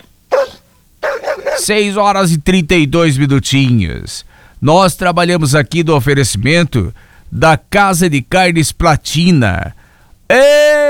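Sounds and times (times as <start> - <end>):
dog barking and yelping: 0.0 - 1.8
speech: 1.6 - 10.8.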